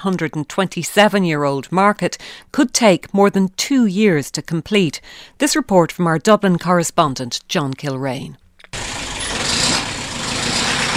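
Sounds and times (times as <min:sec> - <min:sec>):
speech: 0:00.0 - 0:08.4
1962 Bedford truck engine rumbling at a market early in the morning: 0:08.8 - 0:10.9.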